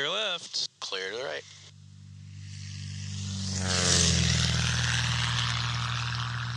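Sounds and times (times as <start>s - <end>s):
propeller airplane engine droning at low taxiing power after landing: 0.0s - 6.5s
whooshing noise: 1.4s - 6.5s.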